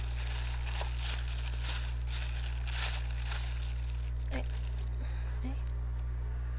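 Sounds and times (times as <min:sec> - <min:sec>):
paper tearing and crinkling as a stapled paper package is ripped open: 0:00.0 - 0:05.0
steady low hum: 0:00.0 - 0:06.5.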